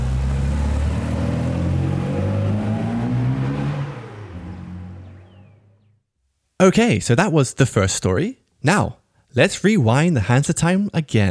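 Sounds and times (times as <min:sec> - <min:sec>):
Mini Cooper car engine accelerating: 0:00.0 - 0:06.0
speech: 0:06.6 - 0:11.2.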